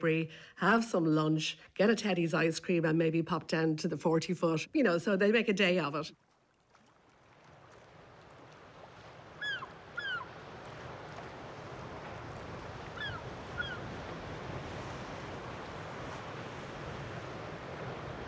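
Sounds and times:
speech: 0:00.0 - 0:06.2
choppy sea waves: 0:06.4 - 0:18.2
rising gusting wind: 0:08.0 - 0:18.2.

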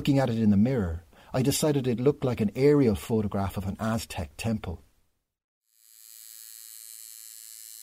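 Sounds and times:
speech: 0:00.0 - 0:04.8
tattoo gun buzzing: 0:05.7 - 0:07.8.

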